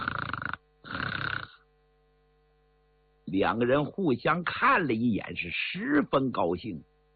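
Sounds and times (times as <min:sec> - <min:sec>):
voice imitating loud snoring: 0:00.0 - 0:01.6
speech: 0:03.3 - 0:06.9.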